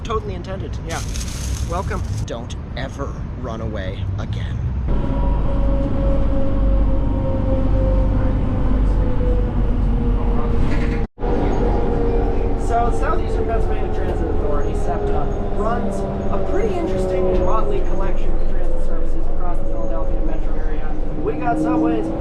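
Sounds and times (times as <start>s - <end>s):
electric trolley bus low rumble: 0.0s - 22.1s
speech: 0.1s - 5.2s, 12.9s - 18.5s, 19.6s - 22.1s.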